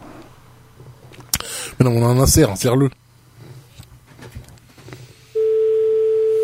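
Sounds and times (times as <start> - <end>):
speech: 1.8 - 3.0
telephone ringback tone on outgoing call: 5.4 - 6.4.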